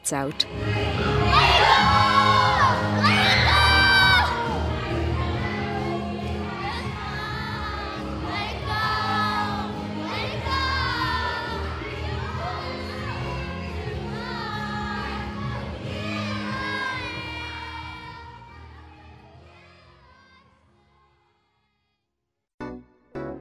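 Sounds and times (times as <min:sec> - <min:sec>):
speech: 0:00.1 - 0:01.2
big group of children shouting and cheering at a camp party: 0:00.5 - 0:20.7.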